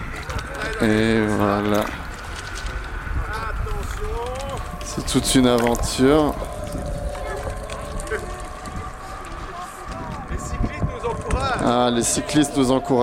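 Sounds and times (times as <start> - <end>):
faint water movement: 0.0 - 13.0
speech: 0.8 - 2.0, 4.0 - 6.5, 11.4 - 13.0
steady wind rushing over open water: 1.9 - 13.0.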